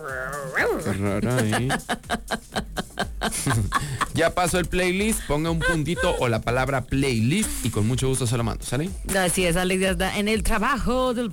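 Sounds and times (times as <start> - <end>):
person imitating a dog with howls and yips: 0.0 - 1.5, 5.5 - 6.3
speech: 0.0 - 2.4, 3.4 - 11.3
laughter: 0.8 - 6.4.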